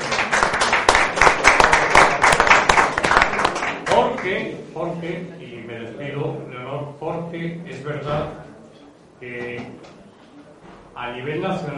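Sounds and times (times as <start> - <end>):
audience applause: 0.0 - 4.3
speech: 4.3 - 8.5, 9.2 - 10.0, 11.0 - 11.7.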